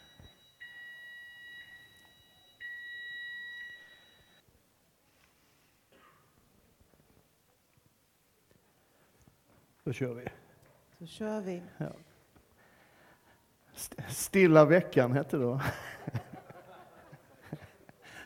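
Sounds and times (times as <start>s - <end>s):
fire alarm in two long shrill electronic tones: 0.0s - 4.4s
speech: 9.9s - 10.4s, 11.0s - 12.1s, 13.8s - 16.2s
laughter: 15.5s - 18.2s.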